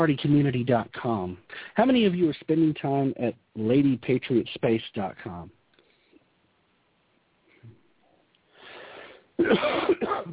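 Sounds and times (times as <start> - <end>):
speech: 0.0 - 5.6, 9.4 - 10.3
person coughing roughly: 9.4 - 10.3.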